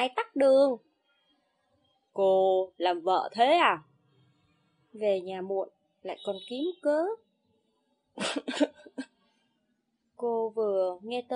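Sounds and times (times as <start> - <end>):
speech: 0.0 - 0.9, 2.2 - 3.9, 5.0 - 7.2, 8.2 - 9.1, 10.2 - 11.3
woman's loud dry cough: 8.2 - 9.1.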